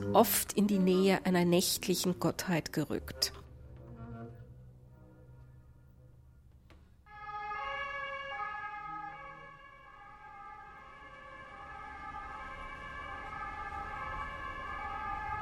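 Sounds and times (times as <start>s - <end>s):
speech: 0.0s - 3.4s
two-tone ambulance siren wailing: 7.1s - 15.4s.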